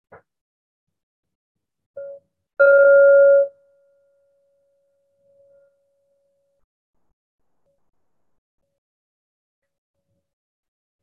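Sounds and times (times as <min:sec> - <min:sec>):
meditation bell ringing: 0:02.6 - 0:03.6.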